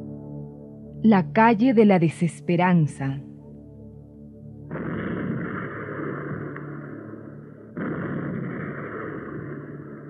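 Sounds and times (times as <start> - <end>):
speech: 1.1 - 3.3
heavy cannon blasts: 4.7 - 10.0.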